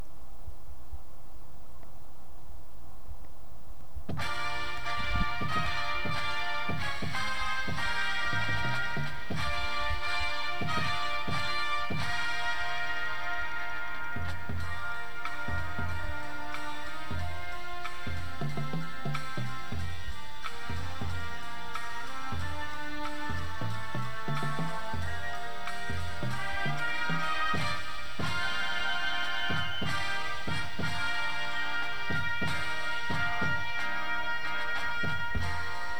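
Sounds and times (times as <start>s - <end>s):
drumline playing: 4.0s - 35.9s
bass: 4.1s - 35.9s
music: 4.1s - 35.9s.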